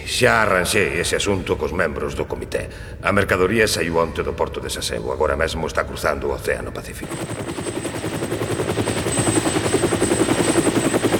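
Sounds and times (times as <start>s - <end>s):
speech: 0.1s - 7.8s
transport helicopter rotor thumping: 7.0s - 11.1s
helicopter turbine whine: 7.1s - 11.1s.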